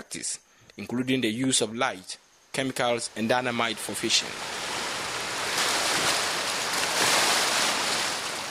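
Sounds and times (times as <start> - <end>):
speech: 0.1 - 4.6
sea waves washing onto the seashore of a coastal fishing community: 3.0 - 8.4.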